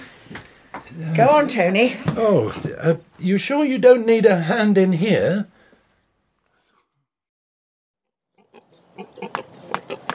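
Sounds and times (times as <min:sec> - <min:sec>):
speech: 0:01.0 - 0:05.5
pig grunting: 0:08.3 - 0:10.1.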